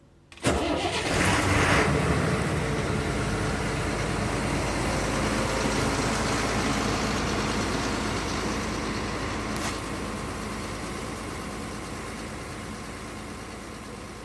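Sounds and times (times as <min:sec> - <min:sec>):
vehicle engine turning over: 0:00.3 - 0:07.7
vehicle engine idling in a traffic jam: 0:00.3 - 0:14.2.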